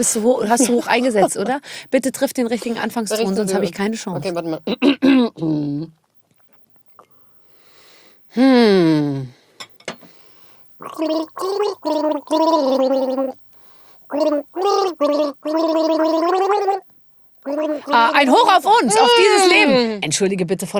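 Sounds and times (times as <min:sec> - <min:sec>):
speech: 0:00.0 - 0:06.0, 0:08.3 - 0:09.4, 0:10.8 - 0:13.4, 0:14.1 - 0:20.7
person gargling a song melody: 0:05.1 - 0:06.0, 0:08.4 - 0:09.3, 0:10.8 - 0:13.4, 0:14.1 - 0:18.3.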